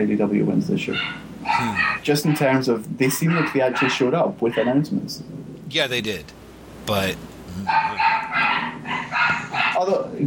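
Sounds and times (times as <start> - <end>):
speech: 0.0 - 8.2, 9.8 - 10.2
dog barking: 0.9 - 4.9, 7.7 - 10.1.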